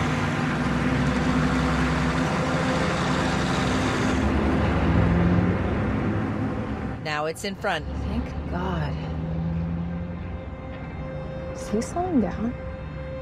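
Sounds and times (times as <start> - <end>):
broadband road noise: 0.0 - 13.2
truck rig rumbling along the road passing a car: 0.0 - 13.2
speech: 7.2 - 9.0, 11.7 - 12.6.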